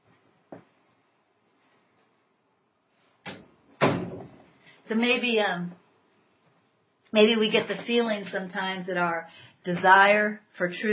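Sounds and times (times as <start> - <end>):
door being closed: 3.3 - 4.4
speech: 4.9 - 5.8, 7.1 - 10.9.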